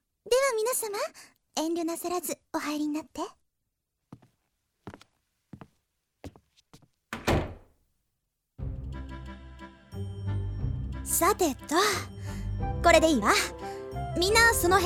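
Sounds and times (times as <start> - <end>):
speech: 0.2 - 3.4, 11.2 - 14.8
door being pushed shut: 7.1 - 7.7.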